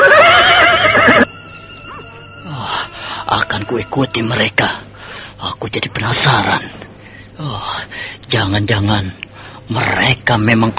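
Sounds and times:
horse whinnying: 0.0s - 3.0s
speech: 3.6s - 4.8s, 5.6s - 6.8s, 7.4s - 10.7s.

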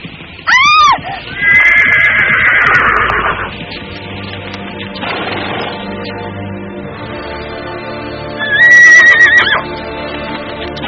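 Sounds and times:
steady rumbling background: 0.0s - 10.8s
ridden horse neighing while galloping: 0.5s - 3.5s, 8.4s - 9.7s.

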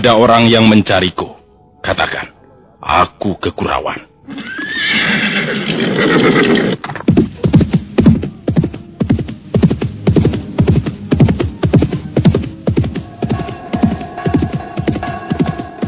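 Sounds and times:
speech: 0.0s - 7.0s
horse neighing loudly: 4.3s - 6.8s
galloping hooves: 5.7s - 15.8s.

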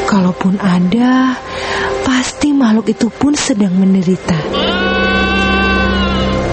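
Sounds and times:
speech: 0.1s - 1.5s, 2.1s - 4.9s
young goat bleating weakly: 4.5s - 6.4s.

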